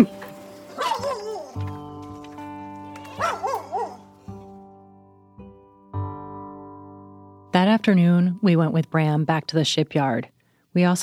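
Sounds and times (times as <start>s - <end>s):
dogs barking and yipping: 0.6s - 4.4s
speech: 7.6s - 11.0s.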